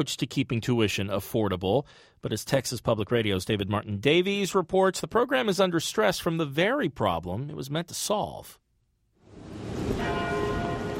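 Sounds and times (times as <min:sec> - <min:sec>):
speech: 0:00.0 - 0:08.6
university tower bells ringing in Austin Texas: 0:09.8 - 0:10.9.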